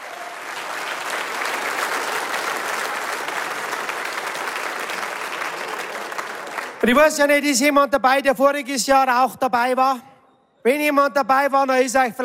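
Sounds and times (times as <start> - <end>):
audience applause: 0.0 - 6.9
speech: 6.8 - 12.2.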